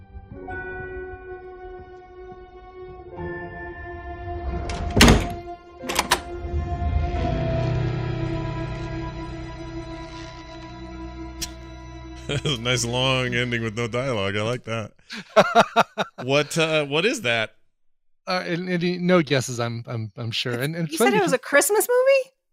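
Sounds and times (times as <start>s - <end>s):
faint tonal background: 0.5s - 21.5s
door pushed shut with a solid thump: 4.6s - 6.4s
laughter: 12.2s - 17.5s, 20.3s - 21.4s
speech: 12.3s - 17.6s, 18.3s - 22.4s.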